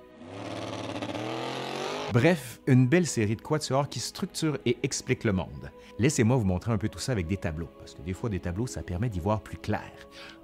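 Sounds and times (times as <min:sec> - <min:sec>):
car engine revving: 0:00.1 - 0:02.1
speech: 0:02.1 - 0:10.4.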